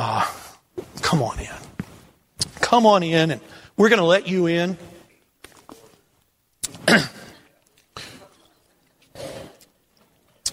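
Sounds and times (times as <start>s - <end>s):
speech: 1.1s - 1.6s, 2.7s - 4.9s, 6.9s - 7.1s
person clearing throat: 6.7s - 8.4s
person coughing: 6.7s - 8.4s.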